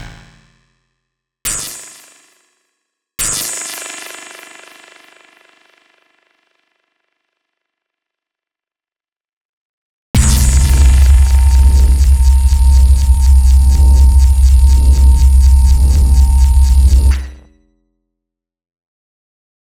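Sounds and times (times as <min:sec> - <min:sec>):
laser weapon sounds: 0:10.2 - 0:17.4.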